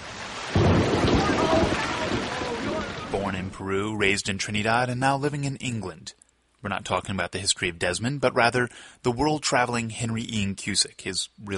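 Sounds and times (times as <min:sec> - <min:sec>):
rain pattering: 0:00.0 - 0:04.8
thunder rumbling: 0:00.1 - 0:03.6
speech: 0:03.6 - 0:11.5.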